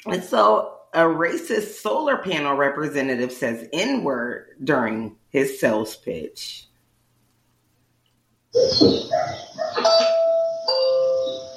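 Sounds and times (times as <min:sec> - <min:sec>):
speech: 0:00.0 - 0:06.7, 0:08.5 - 0:10.0
electronic doorbell playing a short chime melody: 0:09.8 - 0:11.5.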